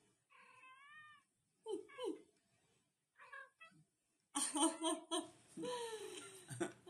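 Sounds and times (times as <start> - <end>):
cat meowing: 0.3 - 1.3, 3.2 - 3.8
laughter: 4.4 - 5.3, 6.2 - 6.8.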